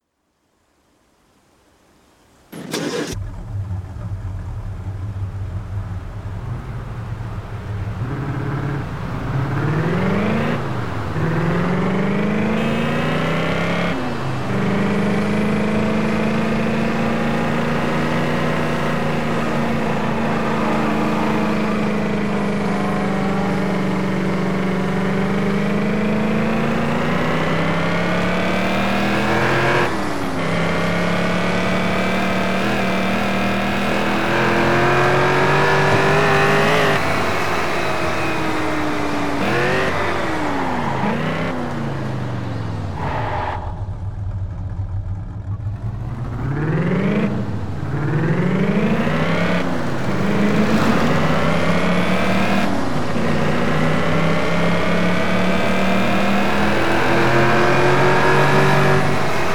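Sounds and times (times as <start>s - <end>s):
Chevrolet El Camino SS: 2.2s - 59.5s.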